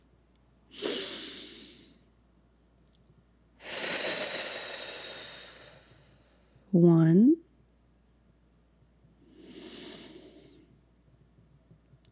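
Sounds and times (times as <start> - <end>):
deep full-body breaths drawn down into the belly: 0.7 - 2.1, 3.6 - 6.7, 9.2 - 10.9
speech: 6.7 - 7.4.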